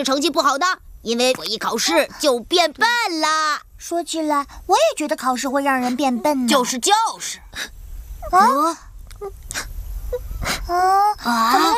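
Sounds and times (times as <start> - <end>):
speech: 0.0 - 11.7
breathy sniffles: 9.2 - 10.7
child crying: 10.6 - 11.7.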